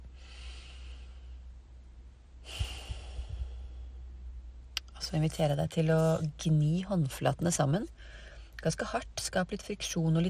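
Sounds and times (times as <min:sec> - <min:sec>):
slow deep breathing in a breathing exercise: 0:00.0 - 0:01.6, 0:02.4 - 0:04.2, 0:08.0 - 0:08.6
faint low hum: 0:00.0 - 0:10.2
speech: 0:05.1 - 0:10.2.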